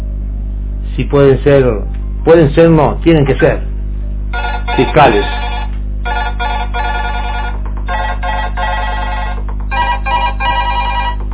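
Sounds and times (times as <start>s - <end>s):
steady low hum: 0.0s - 11.3s
speech: 1.0s - 3.7s, 4.7s - 5.4s
telephone ringing with a bright electronic trill: 4.3s - 11.3s.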